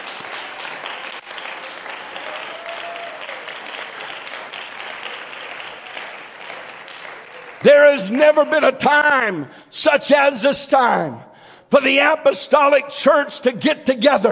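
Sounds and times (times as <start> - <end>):
church audience clapping: 0.0 - 8.4
speech: 7.6 - 14.3.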